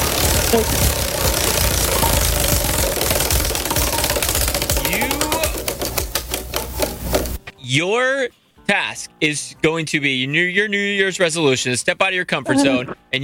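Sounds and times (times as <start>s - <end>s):
prize wheel spinning and clicking: 0.0s - 7.4s
noisy background: 0.0s - 7.6s
speech: 0.5s - 1.0s, 7.7s - 13.2s.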